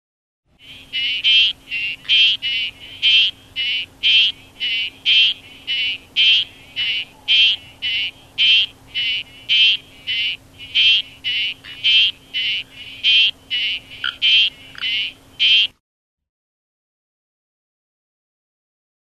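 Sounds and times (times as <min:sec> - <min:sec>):
Crinia frog squelching: 0:00.6 - 0:15.7.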